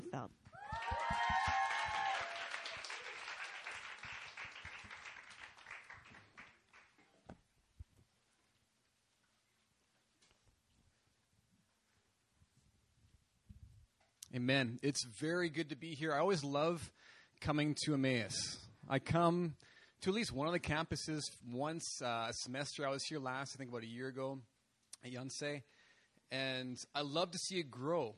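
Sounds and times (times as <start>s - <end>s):
speech: 0.1s - 1.2s, 14.4s - 28.1s
audience applause welcoming a visiting pastor: 0.5s - 7.0s.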